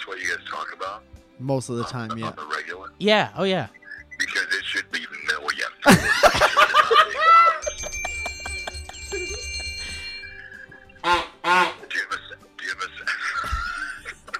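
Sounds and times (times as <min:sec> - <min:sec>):
speech: 0:00.5 - 0:03.8
laughter: 0:05.9 - 0:14.3
steady ringing tone: 0:06.2 - 0:11.2
geese honking: 0:10.5 - 0:12.3.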